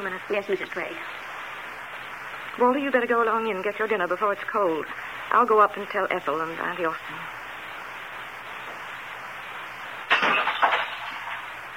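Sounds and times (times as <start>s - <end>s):
speech: 0.0s - 1.2s, 2.6s - 7.4s
ornament fragments scattering: 10.0s - 11.6s
man smashing an ornament: 10.1s - 11.5s.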